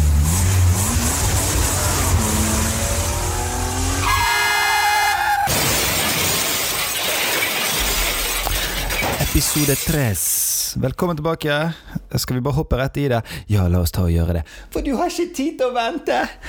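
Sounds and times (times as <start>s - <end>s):
car engine revving as the vehicle drives: 0.0s - 4.6s
sustained horn blaring: 1.6s - 5.4s
crash of shattering glass: 5.4s - 10.3s
speech: 9.5s - 16.4s.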